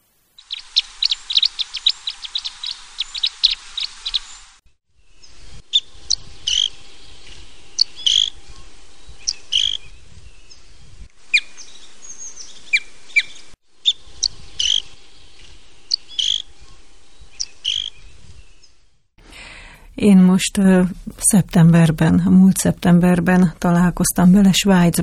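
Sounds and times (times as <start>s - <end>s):
red crossbill Loxia curvirostra calls: 0.4s - 4.6s, 5.2s - 10.7s, 11.3s - 18.8s
speech: 20.0s - 25.0s.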